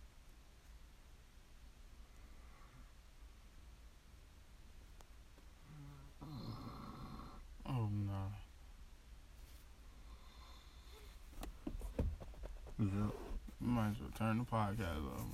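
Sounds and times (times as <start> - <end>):
hiss: 0.0 - 15.3
throaty snoring: 5.7 - 7.4
speech: 12.8 - 15.3.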